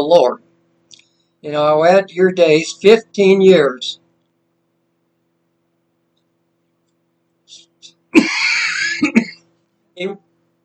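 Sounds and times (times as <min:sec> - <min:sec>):
speech: 0:00.0 - 0:00.4, 0:01.4 - 0:04.0, 0:09.0 - 0:09.2, 0:10.0 - 0:10.2
sharp coughs: 0:08.2 - 0:09.4
throat clearing: 0:08.2 - 0:09.4.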